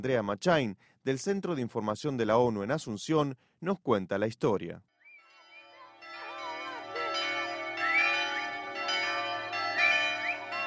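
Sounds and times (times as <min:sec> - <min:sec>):
speech: 0:00.0 - 0:04.9
church bells ringing in a steady peal in Puerto Pinasco Paraguay: 0:05.3 - 0:10.6.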